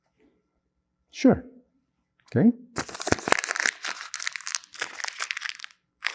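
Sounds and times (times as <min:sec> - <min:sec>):
speech: 0:01.1 - 0:01.5, 0:02.3 - 0:02.9
paper banknote being crumpled in the hands: 0:02.8 - 0:06.1.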